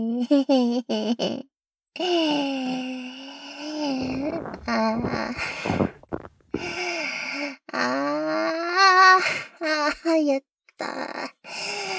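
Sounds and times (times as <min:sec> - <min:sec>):
speech: 0:00.0 - 0:11.9
farting in a toilet: 0:04.0 - 0:06.8.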